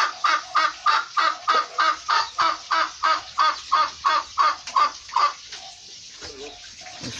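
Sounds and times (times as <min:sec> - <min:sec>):
turkey giving harsh raspy calls: 0:00.0 - 0:05.7.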